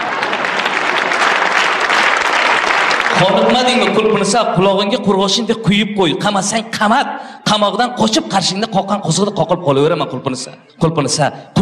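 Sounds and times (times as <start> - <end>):
audience applause: 0.0 - 4.5
speech: 3.2 - 11.6.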